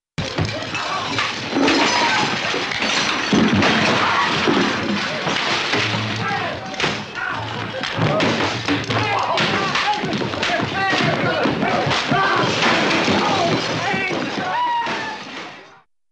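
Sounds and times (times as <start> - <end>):
cartoon glass shattering in a bar fight: 0.2 - 15.5
big cartoon bar fight commotion: 0.2 - 15.6
cartoon wood breaking in a bar fight: 0.2 - 15.6
people yelling in a cartoon bar fight: 0.2 - 15.7.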